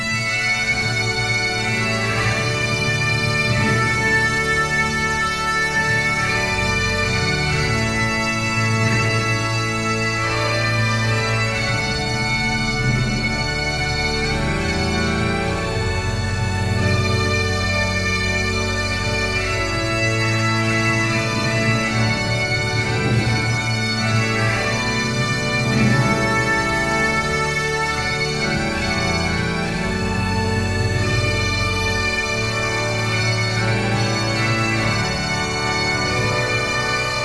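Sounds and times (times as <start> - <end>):
bagpipes: 0.0 - 37.2.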